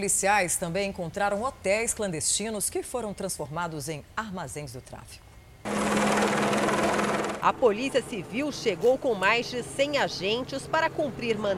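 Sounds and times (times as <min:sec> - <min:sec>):
speech: 0:00.0 - 0:05.8, 0:07.4 - 0:11.5
police helicopter flying overhead: 0:05.7 - 0:11.5.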